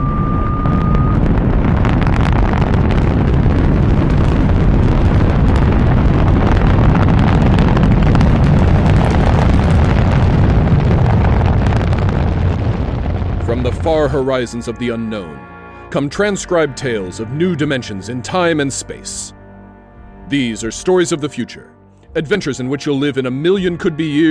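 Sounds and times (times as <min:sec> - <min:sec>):
rocket blasting off after a countdown: 0:00.0 - 0:18.4
speech: 0:14.0 - 0:19.4, 0:20.3 - 0:24.2.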